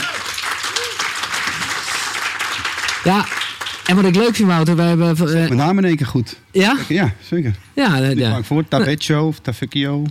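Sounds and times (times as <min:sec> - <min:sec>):
audience applause: 0:00.0 - 0:04.7
speech: 0:03.1 - 0:10.0.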